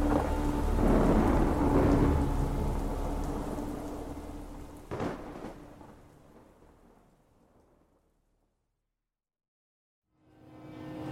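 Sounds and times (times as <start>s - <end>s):
steady rain hissing in a thunderstorm: 0.0s - 7.9s
deep rumble of thunder: 0.0s - 8.2s.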